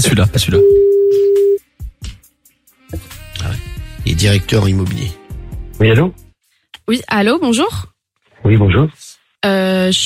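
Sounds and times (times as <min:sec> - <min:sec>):
speech: 0:00.0 - 0:00.9, 0:04.2 - 0:05.2, 0:05.8 - 0:06.2, 0:06.9 - 0:10.0
telephone dialing tone as a call is placed: 0:00.6 - 0:01.6.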